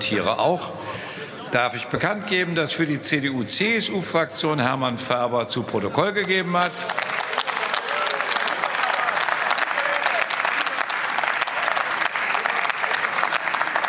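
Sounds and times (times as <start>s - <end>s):
speech: 0.0s - 7.1s
applause from a large assembly in a parliament chamber: 6.2s - 13.8s.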